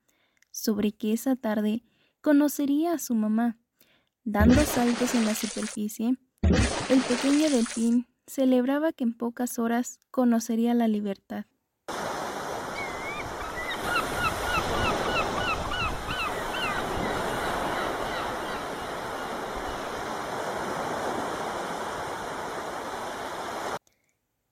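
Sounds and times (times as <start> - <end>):
speech: 0.6 - 3.6, 4.2 - 11.5
ocean waves: 4.4 - 5.8, 6.7 - 8.0, 11.9 - 23.8.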